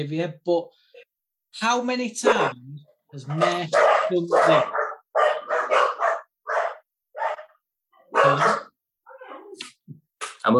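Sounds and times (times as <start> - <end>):
speech: 0.0 - 0.9, 1.5 - 4.8, 8.2 - 8.6
dogs barking: 2.2 - 2.6, 3.2 - 9.6.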